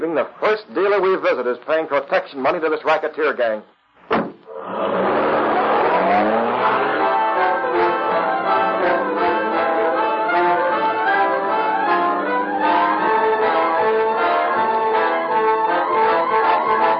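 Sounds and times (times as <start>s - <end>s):
speech: 0.0s - 3.8s
car engine revving as the car pulls away: 4.5s - 16.9s.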